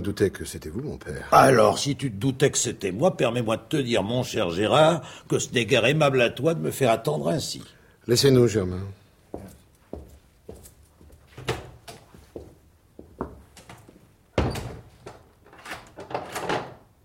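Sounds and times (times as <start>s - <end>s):
speech: 0.0s - 9.5s
wooden door being shut and locked: 14.4s - 16.9s.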